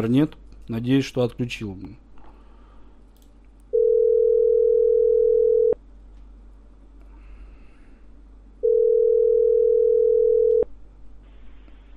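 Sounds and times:
speech: 0.0s - 2.0s
faint hum: 0.0s - 11.9s
telephone ringback tone on an outgoing call: 3.8s - 5.8s, 8.6s - 10.6s.

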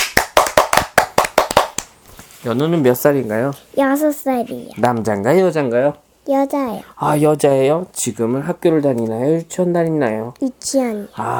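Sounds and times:
hands clapping in welcome: 0.0s - 2.0s
speech: 2.4s - 11.3s.

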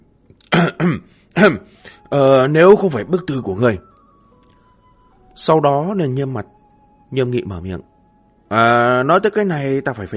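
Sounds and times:
team captain dry coughing and clearing throat: 0.4s - 1.6s
speech: 0.7s - 3.9s, 5.4s - 7.9s, 8.5s - 10.1s.

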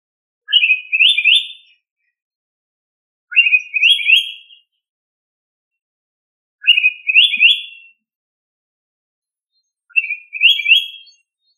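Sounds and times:
bird song with warbled trills: 0.4s - 2.2s, 3.3s - 4.8s, 6.6s - 8.1s, 9.4s - 11.5s.

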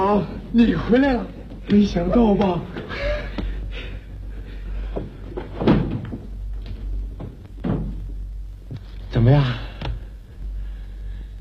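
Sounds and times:
low steady hum: 0.0s - 11.4s
speech: 0.2s - 3.1s, 9.2s - 9.7s
door being opened: 5.4s - 6.3s, 7.1s - 8.1s.

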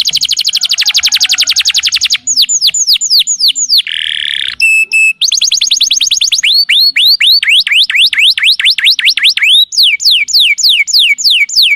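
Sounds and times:
lovebird chattering lure call: 0.0s - 11.7s
brief tonal beeps: 4.6s - 5.2s.

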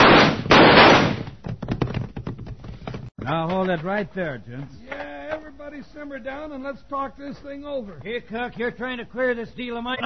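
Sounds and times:
gunshot sound effects in a Western radio drama: 0.0s - 1.4s
speech: 3.3s - 4.9s, 5.7s - 10.0s.

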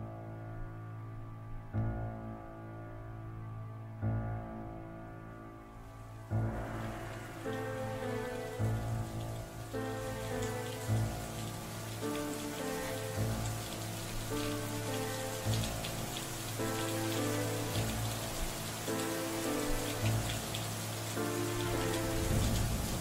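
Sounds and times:
low sustained tonal music: 0.0s - 22.9s
steady rain falling outside in damp weather: 5.9s - 22.9s.

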